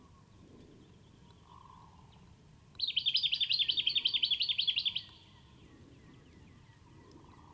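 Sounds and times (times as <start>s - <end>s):
Jacky winter Microeca fascinans giving high chirps: 2.8s - 7.5s.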